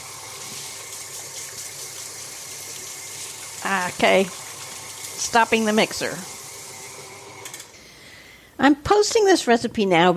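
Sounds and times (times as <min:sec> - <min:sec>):
running tap water rinsing brown sugar off hands in a kitchen: 0:00.0 - 0:07.8
speech: 0:03.6 - 0:04.4, 0:05.2 - 0:06.4, 0:08.6 - 0:10.1.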